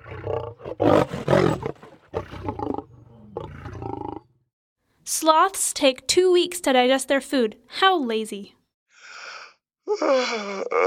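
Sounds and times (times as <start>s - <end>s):
male ostrich roaring: 0.0s - 4.3s
speech: 5.2s - 8.6s, 10.0s - 10.8s.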